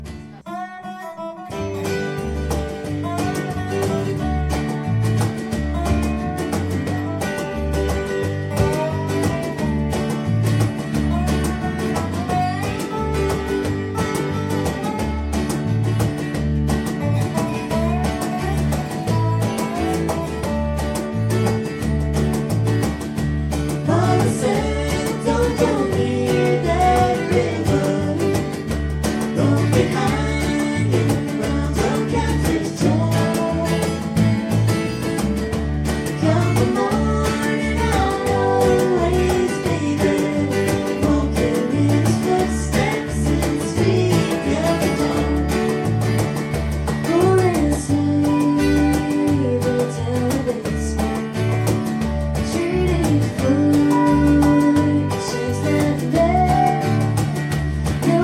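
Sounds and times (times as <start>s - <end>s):
cajon: 1.5s - 58.2s.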